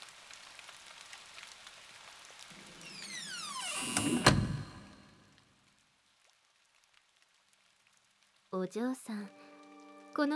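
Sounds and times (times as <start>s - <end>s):
steady rain pattering at an old house in a forest: 0.0s - 2.7s, 5.6s - 10.3s
door sliding open with a rising scrape: 2.6s - 5.3s
speech: 8.6s - 9.5s, 10.2s - 10.3s.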